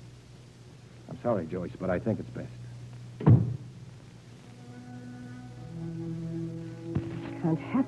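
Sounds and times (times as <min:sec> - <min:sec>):
quiet steady low hum with faint sustained tones: 0:00.0 - 0:07.8
speech: 0:01.2 - 0:02.6, 0:07.4 - 0:07.8
door shutting with a heavy thud: 0:03.2 - 0:03.7.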